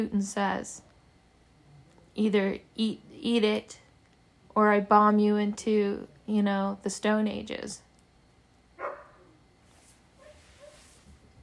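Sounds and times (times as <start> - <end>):
speech: 0.0 - 0.9, 2.2 - 3.8, 4.6 - 7.8
dog barking: 8.8 - 9.3, 10.2 - 10.8.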